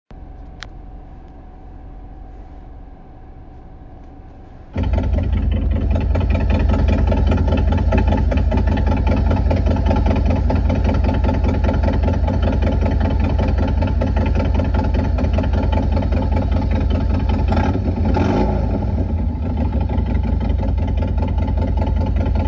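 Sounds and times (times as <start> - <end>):
motorcycle engine with new cams: 4.7 - 22.4.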